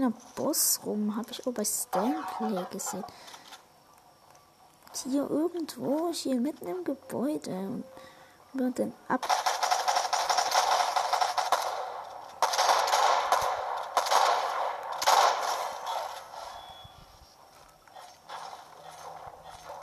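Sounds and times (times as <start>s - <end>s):
speech: 0.0s - 3.4s, 5.0s - 9.4s
gunfire in a video game: 9.2s - 16.8s, 18.0s - 19.8s.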